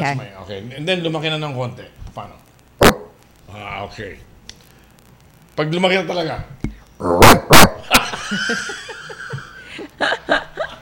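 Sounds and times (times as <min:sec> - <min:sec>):
speech: 0:00.0 - 0:02.5, 0:03.5 - 0:04.3, 0:05.6 - 0:09.2
person imitating a grown dog barking: 0:07.0 - 0:07.8
person chuckling and laughing softly: 0:07.9 - 0:10.8.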